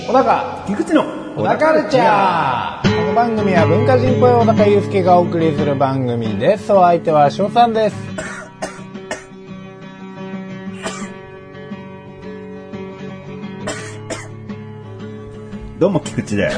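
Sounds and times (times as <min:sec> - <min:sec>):
steady musical background: 0:00.0 - 0:16.5
speech: 0:00.1 - 0:08.4, 0:15.8 - 0:16.5
harsh sputtering coughs after choking on tea: 0:08.1 - 0:09.4, 0:10.8 - 0:11.2, 0:13.6 - 0:14.4.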